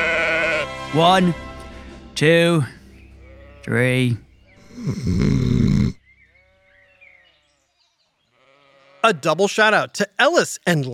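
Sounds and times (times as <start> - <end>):
sheep bleating: 0.0 - 0.9, 3.2 - 4.1, 4.9 - 6.9, 8.3 - 9.2
speech: 0.9 - 1.4, 2.2 - 2.8, 3.6 - 4.2, 4.8 - 5.5, 9.0 - 10.9.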